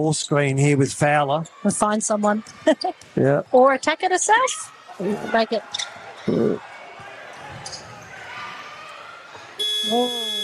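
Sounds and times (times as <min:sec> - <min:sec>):
speech: 0:00.0 - 0:06.7, 0:09.9 - 0:10.2
basketball arena crowd murmuring: 0:04.9 - 0:10.4
basketball end-of-half buzzer: 0:09.6 - 0:10.4.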